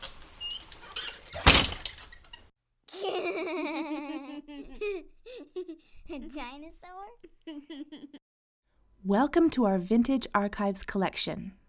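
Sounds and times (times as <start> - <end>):
door pushed shut with a thud: 1.4 - 2.1
young child babbling and giggling: 2.9 - 8.2
speech: 6.2 - 8.2, 9.0 - 11.6.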